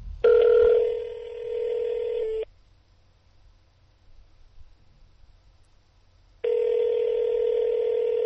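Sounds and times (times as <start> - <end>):
faint telephone line hiss: 0.0 - 7.6
telephone busy line beeping: 0.2 - 2.5, 6.4 - 8.2.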